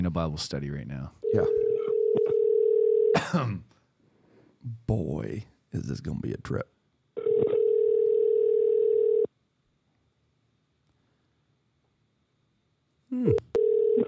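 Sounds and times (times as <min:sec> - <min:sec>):
speech: 0:00.0 - 0:01.6, 0:03.3 - 0:03.8, 0:04.6 - 0:06.7
telephone ringback tone of an outgoing call: 0:01.2 - 0:03.2, 0:07.2 - 0:09.3, 0:13.3 - 0:14.0.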